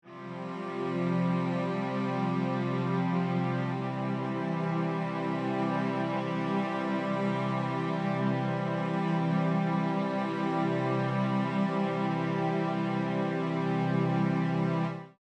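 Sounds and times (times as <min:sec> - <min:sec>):
C resolved chord on string ensemble: 0:00.1 - 0:15.2.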